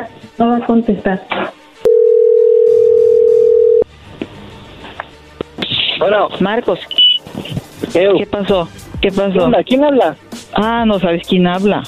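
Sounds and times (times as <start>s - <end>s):
speech: 0.0s - 1.6s, 6.0s - 11.8s
telephone dial tone: 1.9s - 3.9s.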